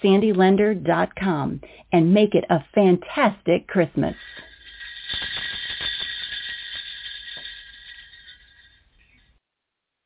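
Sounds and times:
speech: 0.0s - 4.3s
sleigh bells ringing: 4.1s - 9.4s.

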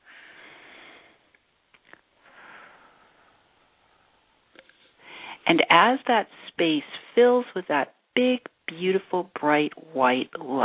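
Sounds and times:
slow deep breath during a guided relaxation exercise: 0.0s - 1.4s, 2.2s - 5.4s
speech: 5.5s - 10.6s.

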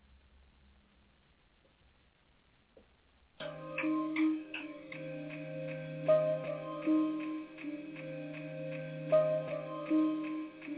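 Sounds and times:
clock ticking: 3.4s - 10.7s
sustained humming musical tones: 3.4s - 10.7s.

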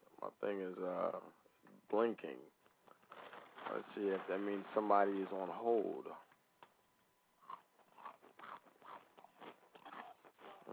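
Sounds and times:
speech: 0.2s - 2.6s, 3.6s - 6.3s
crunchy food being chewed near microphone: 2.6s - 4.3s, 7.4s - 10.7s.

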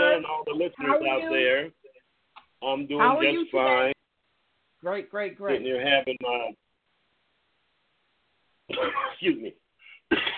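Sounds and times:
speech: 0.3s - 1.8s, 2.6s - 4.0s, 4.8s - 6.6s, 8.7s - 10.3s
throat clearing: 8.7s - 9.2s.

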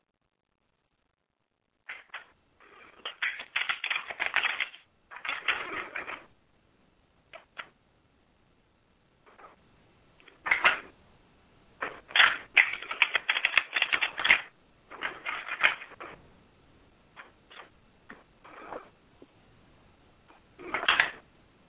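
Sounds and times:
deck of cards being shuffled: 1.9s - 6.3s, 10.3s - 10.9s, 11.8s - 16.2s, 20.6s - 21.2s.

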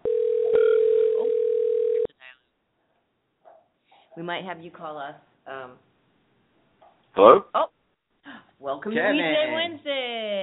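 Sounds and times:
telephone dial tone while dialing out: 0.0s - 2.1s
speech: 4.2s - 5.9s, 7.2s - 7.8s, 8.6s - 10.4s.

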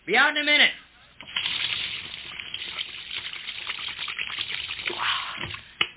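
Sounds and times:
speech: 0.1s - 0.8s
water rushing down a free-flowing drain: 1.2s - 5.7s.

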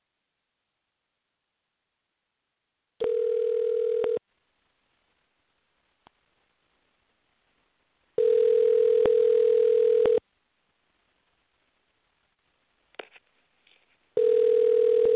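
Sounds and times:
telephone line tone while dialing a number: 3.0s - 4.2s, 8.2s - 10.2s, 14.2s - 15.1s.

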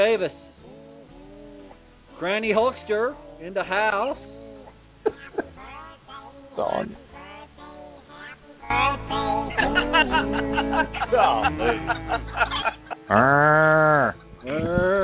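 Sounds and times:
speech: 0.0s - 0.5s, 2.2s - 4.3s, 5.0s - 5.4s, 6.6s - 7.1s, 8.7s - 15.0s
laughter: 5.0s - 5.7s, 9.1s - 15.0s
cow mooing loudly: 13.1s - 15.0s.

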